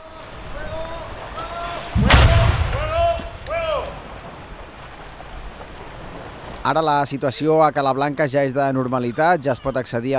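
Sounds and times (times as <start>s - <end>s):
deep underwater detonation of a mortar bomb: 1.9s - 4.3s
short low rumble: 2.0s - 4.2s
speech: 6.6s - 10.1s.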